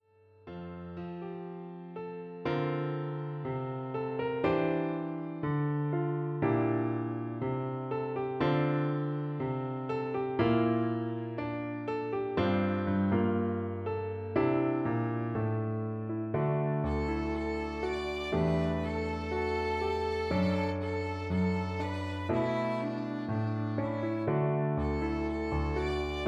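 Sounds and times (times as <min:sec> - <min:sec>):
ballad for piano and violin duet: 0:00.5 - 0:26.2.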